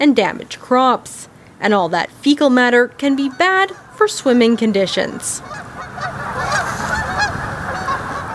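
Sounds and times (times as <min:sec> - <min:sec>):
speech: 0:00.0 - 0:06.1
flock of geese honking: 0:02.3 - 0:08.3.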